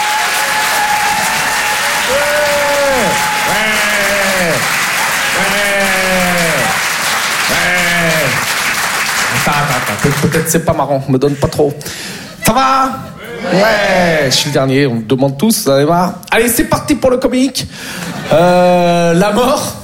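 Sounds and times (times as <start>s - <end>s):
comedy club audience whooping shouts: 0.0s - 6.9s, 7.5s - 8.4s
comedy club audience clapping: 0.0s - 10.7s
speech: 9.9s - 12.1s, 13.5s - 19.8s.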